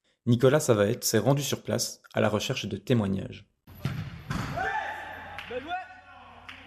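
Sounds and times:
speech: 0:00.2 - 0:03.5
sharp football kicks: 0:03.8 - 0:04.6.

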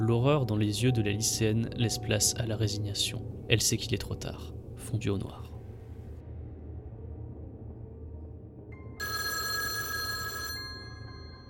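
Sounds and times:
speech: 0:00.1 - 0:05.5
mobile phone ringing: 0:08.8 - 0:11.4.

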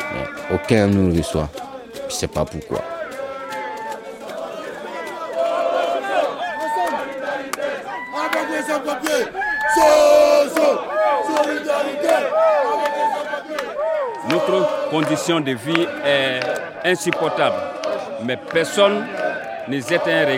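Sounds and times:
crowd of protesters without papers shouting and chanting slogans: 0:00.0 - 0:20.3
speech: 0:00.1 - 0:03.0, 0:14.3 - 0:20.3.

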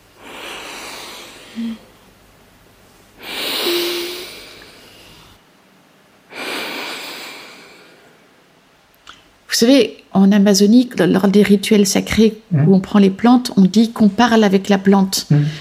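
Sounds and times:
person breathing deeply inhaling the scent of precious wood: 0:00.1 - 0:02.0, 0:03.2 - 0:05.4, 0:06.3 - 0:08.4
speech: 0:01.6 - 0:01.9, 0:09.6 - 0:15.5.

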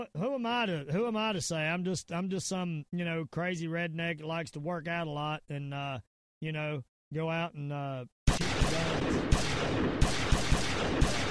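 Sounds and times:
speech: 0:00.0 - 0:11.2
gunshots: 0:08.3 - 0:11.2.

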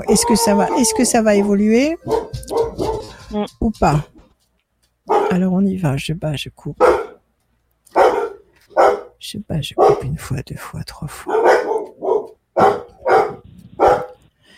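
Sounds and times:
speech: 0:00.0 - 0:02.6, 0:03.3 - 0:04.1, 0:05.3 - 0:07.0, 0:09.3 - 0:11.6
dogs barking at a cat passing through the garden: 0:00.0 - 0:03.2, 0:05.0 - 0:05.4, 0:06.8 - 0:07.2, 0:07.9 - 0:09.2, 0:09.8 - 0:10.1, 0:11.2 - 0:14.3.

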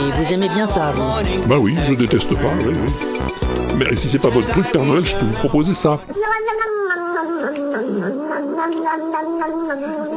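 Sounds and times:
speech: 0:00.0 - 0:10.1
cat yowling in a long wavering caterwaul: 0:06.1 - 0:10.1.

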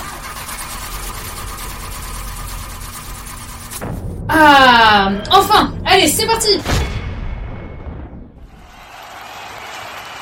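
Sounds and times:
car engine cranking after repair work: 0:00.0 - 0:02.5
speech: 0:04.3 - 0:06.9.

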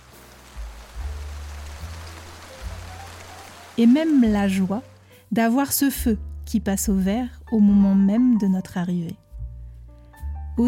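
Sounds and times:
steady soft rain falling: 0:00.0 - 0:05.2
speech: 0:03.8 - 0:09.2.

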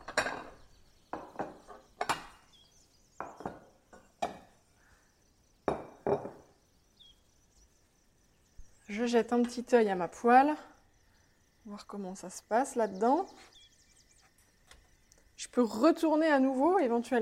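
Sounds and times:
ceramic plates clinking and knocking on a counter: 0:00.1 - 0:02.3, 0:03.2 - 0:04.5, 0:05.7 - 0:06.5
speech: 0:08.9 - 0:10.7, 0:11.8 - 0:13.6, 0:15.5 - 0:17.1.

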